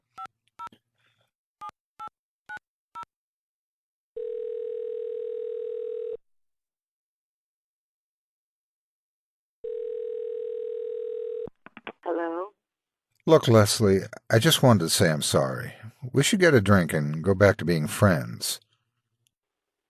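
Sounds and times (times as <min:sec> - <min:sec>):
long steady telephone tone: 0:04.2 - 0:06.2, 0:09.6 - 0:11.5
speech: 0:13.3 - 0:18.7.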